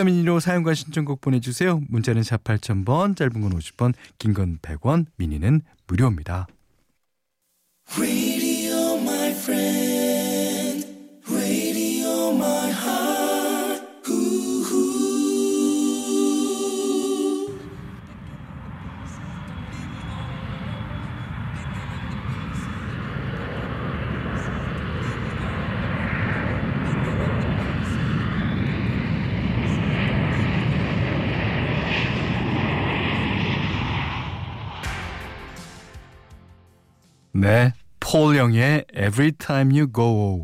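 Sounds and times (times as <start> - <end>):
speech: 0.0 - 6.6, 7.9 - 8.3, 37.4 - 40.4
airplane taking off with jet roar: 8.0 - 36.6.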